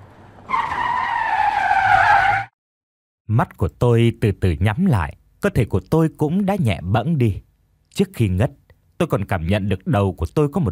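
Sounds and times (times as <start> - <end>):
car tires skidding in a long harsh screech: 0.0 - 2.5
speech: 3.4 - 7.4, 8.0 - 10.6.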